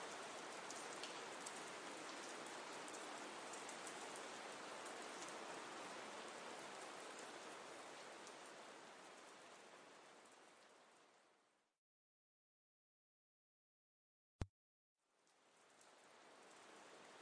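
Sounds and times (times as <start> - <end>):
steady rain: 0.0 - 11.7, 15.1 - 17.1.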